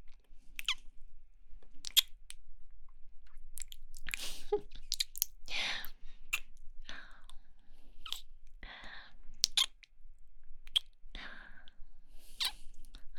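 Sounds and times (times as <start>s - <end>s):
soft wet kissing sounds: 0.6s - 0.8s, 1.8s - 2.2s, 3.6s - 5.4s, 8.0s - 8.3s, 9.4s - 9.8s, 10.7s - 10.9s, 12.4s - 12.6s.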